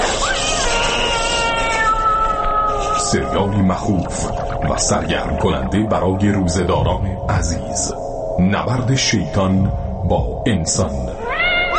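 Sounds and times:
cat meowing in a wailing caterwaul: 0.0s - 3.9s, 11.2s - 11.7s
speech: 3.1s - 11.1s.

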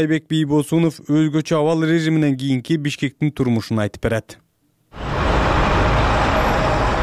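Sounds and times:
speech: 0.0s - 5.0s
traffic noise from a jammed major street in Bishkek: 5.0s - 7.0s.

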